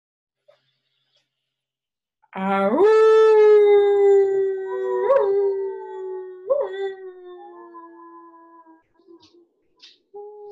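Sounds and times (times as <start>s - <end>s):
people howling like wolves on an inhale during a breathing exercise: 2.6s - 9.4s.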